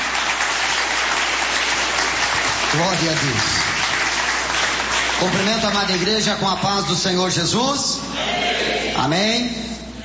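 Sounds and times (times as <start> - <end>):
church congregation applauding to welcome the pastor: 0.0 - 7.3
speech: 2.7 - 3.7, 5.2 - 9.7.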